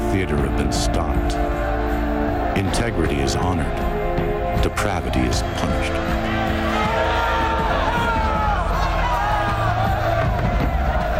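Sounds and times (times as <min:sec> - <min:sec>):
speech: 0:00.2 - 0:01.6, 0:02.6 - 0:04.0, 0:04.6 - 0:06.6
large crowd roaring: 0:00.9 - 0:11.1
overlapping shouts and raised voices: 0:05.3 - 0:11.1.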